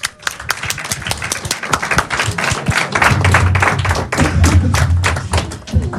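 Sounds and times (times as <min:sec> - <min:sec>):
audience applause at an improv show: 0:00.0 - 0:05.9
low rumble of crowd noise: 0:00.0 - 0:05.9.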